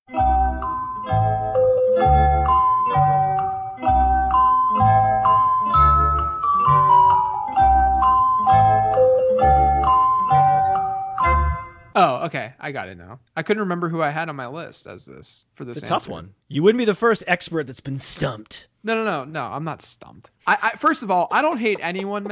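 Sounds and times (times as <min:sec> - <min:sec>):
plinking bell-like quiz-show melody: 0:00.1 - 0:11.9
speech: 0:12.3 - 0:22.3
laughter: 0:21.2 - 0:22.3.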